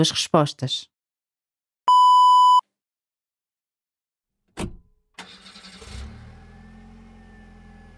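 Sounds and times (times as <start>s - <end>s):
speech: 0.0s - 0.9s, 4.6s - 4.8s
short electronic beep: 1.9s - 2.6s
car engine cranking and starting: 4.6s - 7.9s.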